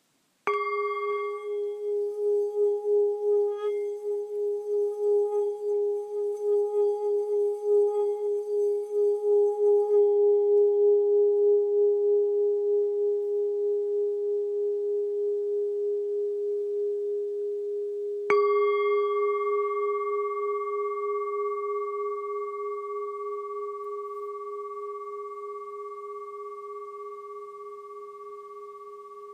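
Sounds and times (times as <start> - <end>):
Bengal bowl ringing in C sharp: 0.4 - 29.3.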